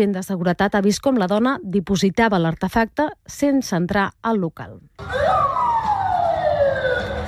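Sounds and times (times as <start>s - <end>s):
speech: 0.0s - 5.6s
police siren wailing after an explosion: 5.0s - 7.2s.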